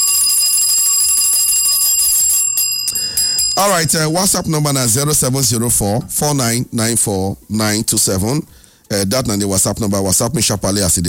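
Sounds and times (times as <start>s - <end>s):
bright bell ringing with a shrill metallic shimmer: 0.0s - 5.0s
speech: 3.6s - 11.0s.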